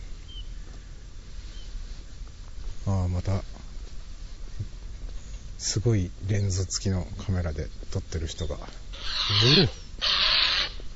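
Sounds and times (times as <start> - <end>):
speech: 2.9 - 3.5, 5.6 - 10.2
large bird short rising call: 9.0 - 10.9.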